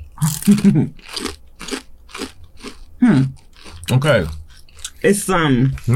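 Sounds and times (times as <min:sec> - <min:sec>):
speech: 0:00.2 - 0:01.3, 0:03.1 - 0:04.4, 0:05.0 - 0:05.9
crunching on ranch-flavored tortilla chips: 0:00.2 - 0:05.0.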